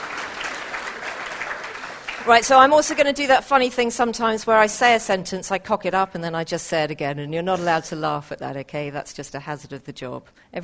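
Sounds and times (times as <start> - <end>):
audience applause: 0.0 - 2.7
speech: 2.2 - 10.6.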